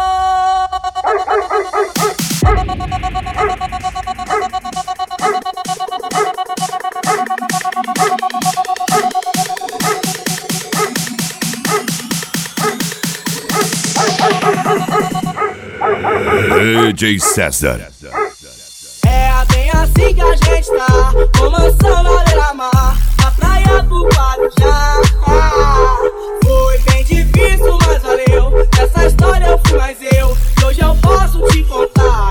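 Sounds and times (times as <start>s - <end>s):
dog barks in music track: 1.0s - 2.6s, 3.4s - 3.6s, 4.2s - 4.6s, 5.2s - 5.5s, 6.1s - 6.4s, 7.0s - 7.4s, 8.9s - 9.2s, 9.8s - 12.9s, 13.5s - 17.4s, 18.1s - 18.4s
loud busy electronic beat: 1.9s - 32.2s
speech: 17.0s - 18.0s.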